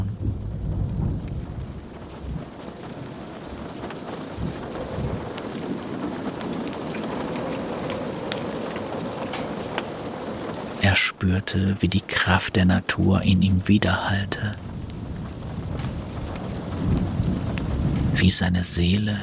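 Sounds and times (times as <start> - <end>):
deep rolls of thunder rumbling: 0.0 - 19.2
steady rain pattering and hissing: 0.0 - 19.2
speech: 11.0 - 14.7, 18.2 - 19.2.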